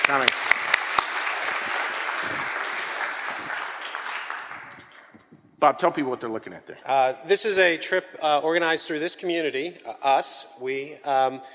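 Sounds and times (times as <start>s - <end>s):
crowd applauding with dense clapping from many hands: 0.0s - 5.2s
speech: 0.1s - 0.8s, 5.6s - 11.5s.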